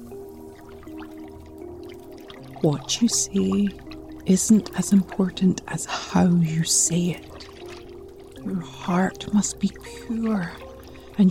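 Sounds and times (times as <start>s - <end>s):
ingredients stirred into water: 0.0s - 11.2s
small drips: 0.0s - 11.2s
steady low humming tone: 0.0s - 11.2s
speech: 2.6s - 7.4s, 8.8s - 10.6s.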